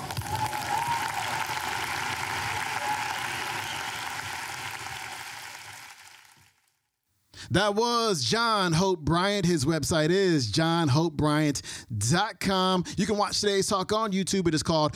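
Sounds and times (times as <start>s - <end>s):
loud dense applause from a large audience: 0.0s - 6.7s
speech: 7.5s - 14.9s.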